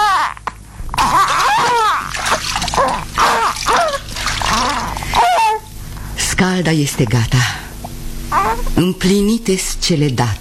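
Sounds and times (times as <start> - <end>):
water splashing as a baby is bathed in a golden tub: 1.0 - 5.6
water dripping and pouring: 1.3 - 5.2
speech: 6.5 - 7.6, 8.8 - 10.3.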